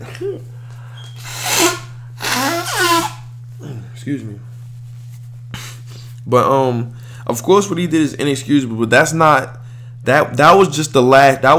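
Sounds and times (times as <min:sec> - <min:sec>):
steady low electrical hum: 0:00.0 - 0:11.5
speech: 0:00.2 - 0:00.6, 0:04.0 - 0:04.5, 0:06.3 - 0:11.5
person with allergies blowing nose: 0:01.0 - 0:03.3, 0:05.5 - 0:06.1.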